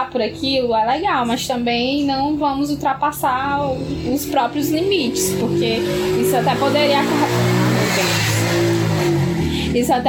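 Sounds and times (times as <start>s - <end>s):
speech: 0.1s - 8.7s, 9.7s - 10.0s
motorcycle engine revving past: 2.8s - 10.0s.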